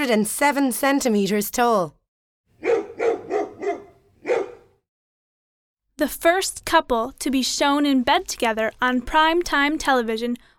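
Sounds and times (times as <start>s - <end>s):
speech: 0.0s - 2.0s, 6.0s - 10.5s
large dog barking with a deep booming voice: 2.6s - 4.8s.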